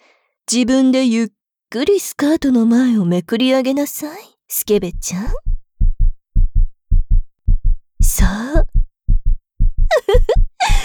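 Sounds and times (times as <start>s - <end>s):
speech: 0.5s - 5.5s, 8.1s - 8.7s
heartbeat thumping in lub-dub pairs: 4.8s - 10.8s.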